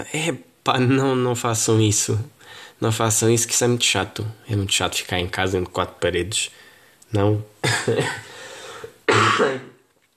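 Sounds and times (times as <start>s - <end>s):
speech: 0.0s - 8.3s
coughs into an elbow: 7.6s - 8.4s, 9.0s - 9.9s.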